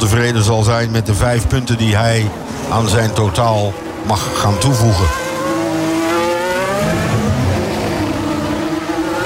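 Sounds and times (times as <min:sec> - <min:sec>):
speech: 0:00.0 - 0:05.2
Formula 1 race car engine passing during a sprint race: 0:02.3 - 0:09.2.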